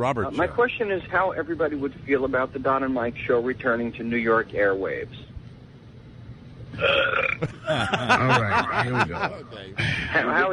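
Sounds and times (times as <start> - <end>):
speech: 0.0 - 5.3, 6.7 - 10.5
long croaking belch with wavering pitch: 6.8 - 7.4
loud drawn-out burp: 6.8 - 7.4
laughter: 7.4 - 10.5.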